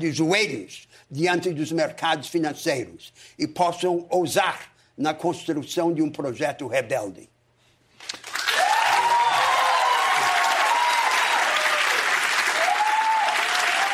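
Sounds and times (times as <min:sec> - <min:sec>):
speech: 0:00.0 - 0:07.3
sustained applause from a sizable audience: 0:08.1 - 0:13.9.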